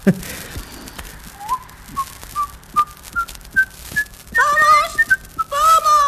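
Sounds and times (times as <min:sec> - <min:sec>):
speech: 0:00.0 - 0:00.4
person whistling a short tune: 0:01.4 - 0:05.7.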